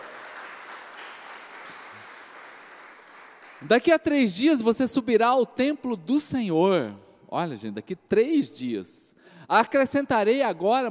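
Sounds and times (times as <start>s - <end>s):
congregation applauding: 0.0s - 3.9s
speech: 3.6s - 10.8s.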